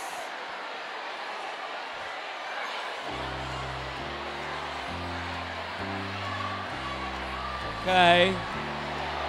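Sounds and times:
large audience murmuring and chattering: 0:00.0 - 0:09.2
sustained musical chords: 0:03.1 - 0:09.2
speech: 0:07.8 - 0:08.6.

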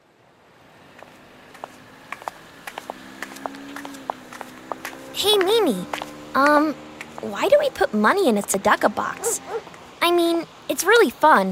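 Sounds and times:
footsteps walking: 0:00.9 - 0:07.4, 0:09.1 - 0:09.8
speech: 0:05.2 - 0:09.3, 0:10.1 - 0:11.5.

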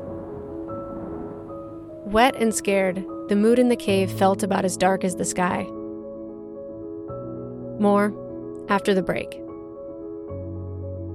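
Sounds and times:
steady dense rainfall hissing in a thunderstorm: 0:00.0 - 0:02.1
low rumbling undertone of thunderstorm: 0:00.0 - 0:03.6
speech: 0:02.1 - 0:05.8, 0:07.8 - 0:09.4.

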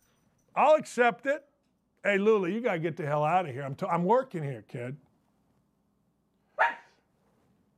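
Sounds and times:
speech: 0:00.6 - 0:05.0
dog barking: 0:06.6 - 0:07.0.

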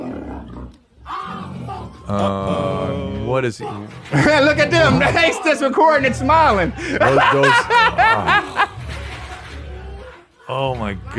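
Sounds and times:
lion roaring: 0:00.0 - 0:05.3, 0:07.7 - 0:11.1
speech: 0:02.1 - 0:02.6, 0:03.3 - 0:08.7, 0:10.5 - 0:11.1
laughter: 0:04.0 - 0:09.3.

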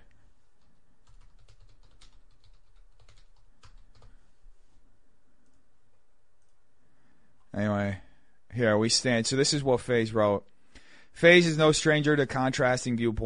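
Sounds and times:
typing on a computer keyboard: 0:01.0 - 0:04.1
speech: 0:08.6 - 0:10.5, 0:11.2 - 0:13.2.

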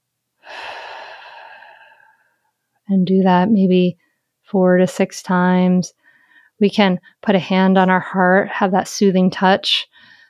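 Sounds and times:
slow calming breath in and out from a relaxation exercise: 0:00.4 - 0:02.6, 0:06.0 - 0:06.6, 0:09.9 - 0:10.2
speech: 0:02.9 - 0:06.0, 0:06.6 - 0:10.1.

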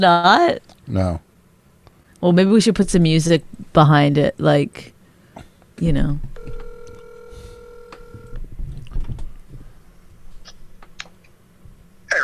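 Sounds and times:
speech: 0:00.0 - 0:01.2, 0:02.2 - 0:04.9, 0:05.8 - 0:06.6
telephone line tone: 0:06.4 - 0:08.4.

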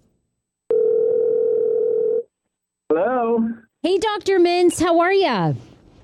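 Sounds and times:
telephone dial tone of an outgoing call to a doctor: 0:00.7 - 0:02.2
speech: 0:03.8 - 0:05.7.

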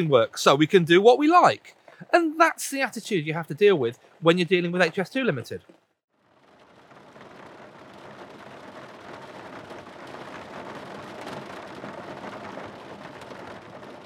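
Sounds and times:
speech: 0:00.0 - 0:05.8
heavy rain on a car roof heard from inside the back of the car: 0:06.1 - 0:14.0.

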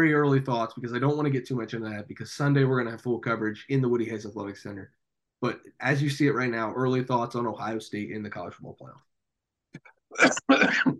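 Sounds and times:
speech: 0:00.0 - 0:09.1, 0:09.8 - 0:10.9
person coughing: 0:10.1 - 0:10.9.

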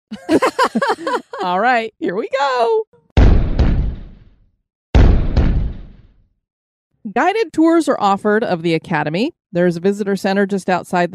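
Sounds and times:
speech: 0:00.1 - 0:00.5, 0:01.4 - 0:02.9, 0:07.1 - 0:11.1
laughter: 0:00.1 - 0:01.6
cannon blasts: 0:03.2 - 0:04.4, 0:05.0 - 0:06.2.

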